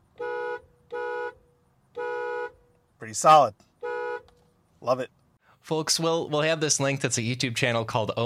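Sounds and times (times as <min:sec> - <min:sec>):
Acura NSX car horn honking: 0:00.0 - 0:02.7, 0:03.8 - 0:04.4
speech: 0:03.0 - 0:03.7, 0:04.8 - 0:08.2.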